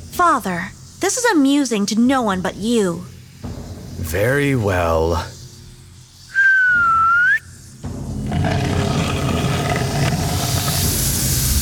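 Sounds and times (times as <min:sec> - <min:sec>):
speech: 0:00.2 - 0:03.1, 0:04.1 - 0:05.4
person whistling: 0:06.3 - 0:07.5
heavy grinding rumble: 0:08.3 - 0:11.5.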